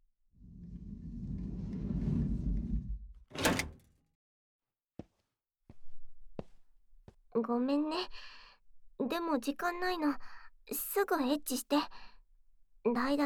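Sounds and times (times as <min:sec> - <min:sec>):
long low rumbling movement: 0:00.4 - 0:03.3
door being shut with a loud bang: 0:03.2 - 0:03.9
speech: 0:07.4 - 0:08.4, 0:09.0 - 0:12.1, 0:12.8 - 0:13.2.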